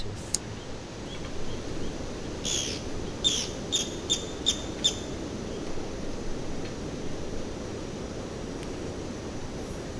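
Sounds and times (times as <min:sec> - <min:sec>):
background hiss: 0:00.0 - 0:09.9
Japanese pygmy woodpecker calls: 0:00.6 - 0:05.1.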